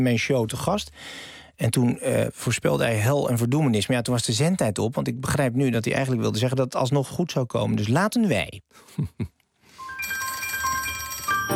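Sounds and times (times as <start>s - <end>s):
speech: 0.0s - 9.4s
telephone ringing as an outgoing call is placed: 9.8s - 11.5s.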